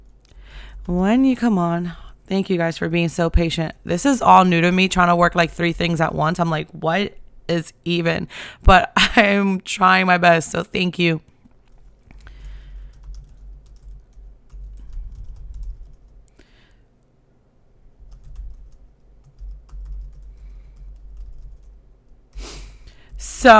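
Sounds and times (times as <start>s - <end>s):
low hum: 0.0s - 23.5s
speech: 0.8s - 11.3s
clicking of keys on a computer keyboard: 11.7s - 16.2s, 18.1s - 21.8s.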